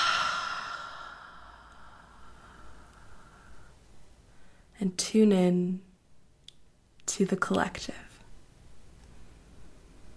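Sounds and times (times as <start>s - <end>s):
slow soft breath and long quiet exhale during a guided breathing exercise: 0.0s - 4.7s
speech: 4.8s - 5.9s, 7.2s - 8.1s.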